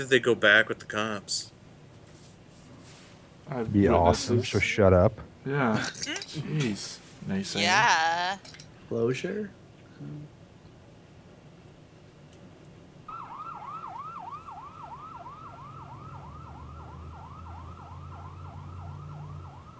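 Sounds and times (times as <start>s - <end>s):
speech: 0.0s - 1.6s, 3.5s - 10.3s
ambulance siren yelping: 13.1s - 19.7s.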